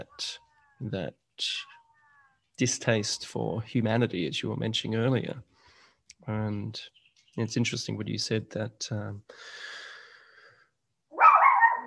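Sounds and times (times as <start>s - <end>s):
speech: 0.2s - 1.8s, 2.6s - 5.5s, 6.2s - 9.8s
little female dog barking at a horse: 11.2s - 11.8s.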